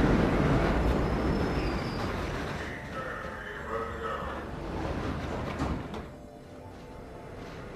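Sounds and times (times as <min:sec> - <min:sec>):
subway train rumbling with low roar and rattling: 0:00.0 - 0:07.7
squealing tones of subway train: 0:00.1 - 0:06.1.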